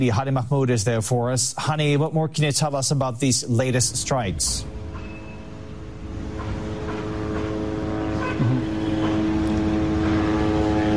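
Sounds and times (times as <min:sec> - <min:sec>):
speech: 0:00.0 - 0:04.8
drones hovering overhead: 0:04.2 - 0:10.9.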